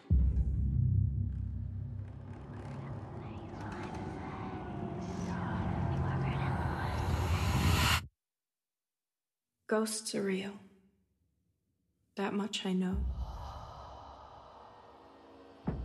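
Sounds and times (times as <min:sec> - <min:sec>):
deep ominous low rumble from a horror film trailer: 0:00.0 - 0:08.0, 0:13.0 - 0:15.0
whisper-like textures: 0:02.2 - 0:08.1
speech: 0:09.7 - 0:10.6, 0:12.2 - 0:13.2.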